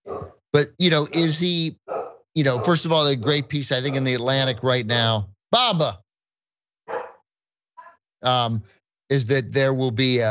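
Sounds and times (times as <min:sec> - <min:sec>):
dog barking: 0:00.0 - 0:00.4, 0:01.8 - 0:04.4, 0:06.9 - 0:07.3
speech: 0:00.6 - 0:01.8, 0:02.4 - 0:06.0, 0:08.2 - 0:10.3.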